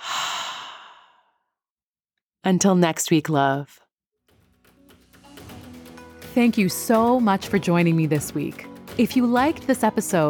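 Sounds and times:
deep exhale through the mouth: 0.0 - 1.3
speech: 2.4 - 3.8, 6.4 - 10.2.

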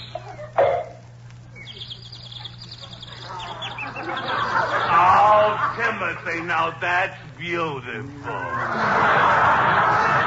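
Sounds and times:
birds chirping and trilling in chorus: 0.0 - 7.9
low constant hum: 0.0 - 10.2
laughter: 0.1 - 0.8, 1.4 - 7.2, 8.0 - 10.2
speech: 6.3 - 10.2.

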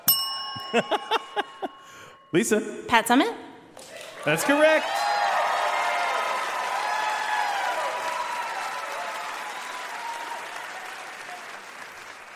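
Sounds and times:
speech: 0.7 - 1.5, 2.3 - 3.5, 4.2 - 5.1
whoops and cheers: 3.8 - 11.8
crowd applauding: 3.8 - 12.3.

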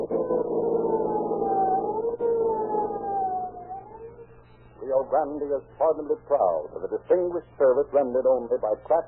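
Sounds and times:
police car siren wailing: 0.0 - 5.2
speech: 5.1 - 9.0.

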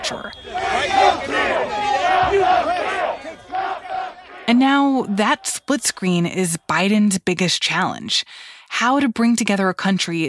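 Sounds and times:
large crowd cheering and celebrating in the streets: 0.0 - 7.0
speech: 4.5 - 10.2.

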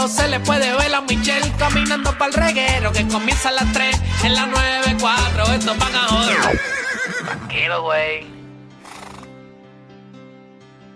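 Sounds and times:
speech: 0.0 - 8.4
horse whinnying: 6.3 - 7.6, 8.8 - 9.4.

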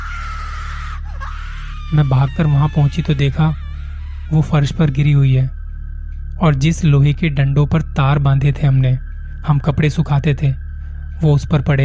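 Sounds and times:
woman screaming in sudden fright: 0.0 - 4.7
speech: 1.9 - 3.6, 4.3 - 5.6, 6.4 - 10.6, 11.2 - 11.8.

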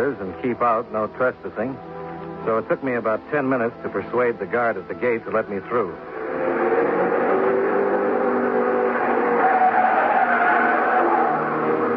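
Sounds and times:
speech: 0.0 - 6.6
test cars thundering past on the track at a testing ground: 6.0 - 11.9.

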